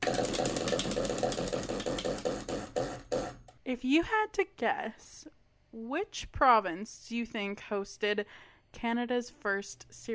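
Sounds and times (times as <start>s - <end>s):
wheel of questions spinning and ticking: 0.0s - 3.5s
speech: 3.7s - 10.1s.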